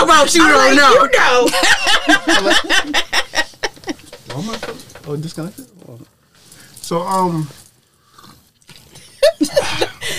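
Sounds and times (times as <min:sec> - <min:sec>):
faint noise: 0:00.0 - 0:10.1
speech: 0:00.1 - 0:03.0, 0:04.4 - 0:06.1, 0:06.9 - 0:07.6
laughter: 0:01.0 - 0:04.8, 0:09.0 - 0:10.1
slurping sips of a drink: 0:07.8 - 0:09.1.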